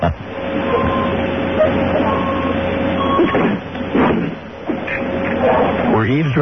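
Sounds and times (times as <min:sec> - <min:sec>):
truck reversing beeper: 0:00.0 - 0:03.6
continuous mechanical hum: 0:00.0 - 0:06.4
speech: 0:06.1 - 0:06.4.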